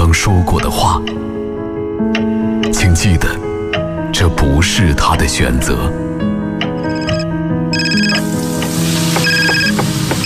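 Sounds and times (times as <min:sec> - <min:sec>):
speech: 0:00.1 - 0:02.3, 0:02.8 - 0:03.5, 0:04.1 - 0:06.0
telephone electronic ringtone melody: 0:06.8 - 0:08.3, 0:09.2 - 0:10.2
food sizzling in a frying pan: 0:08.1 - 0:10.2.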